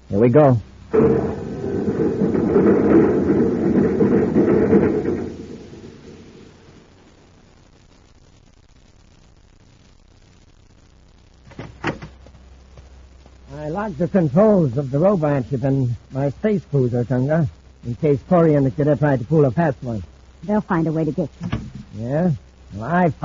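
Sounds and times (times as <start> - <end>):
quiet hum: 0.0 - 23.2
speech: 0.1 - 1.4, 13.8 - 23.2
door shutting: 0.9 - 6.7, 11.5 - 12.2, 21.4 - 21.9
loud dense mechanical rumble and whir: 0.9 - 6.8.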